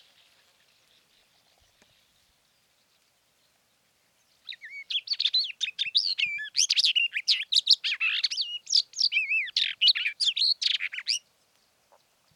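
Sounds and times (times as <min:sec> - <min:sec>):
Barred warbler singing a hurried varied warble: 0:00.0 - 0:12.3.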